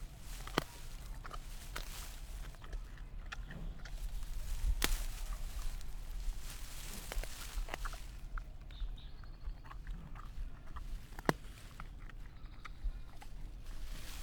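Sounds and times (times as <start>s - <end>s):
giant panda snapping bamboo stalks in Sichuan China: 0.0s - 8.4s, 10.8s - 12.0s
giant panda crunching bamboo: 0.0s - 9.0s, 9.6s - 14.2s
constant low hum: 0.0s - 14.2s.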